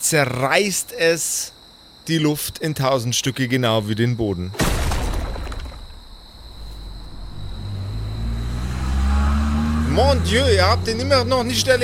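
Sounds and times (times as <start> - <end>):
speech: 0.0 - 4.8, 10.2 - 11.8
damaged engine droning: 6.3 - 11.8.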